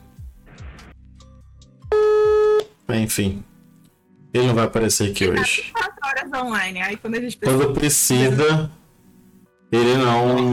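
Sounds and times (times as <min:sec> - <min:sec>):
phone busy signal when calling: 0:01.9 - 0:02.6
speech: 0:02.9 - 0:03.5, 0:04.4 - 0:08.8, 0:09.7 - 0:10.5.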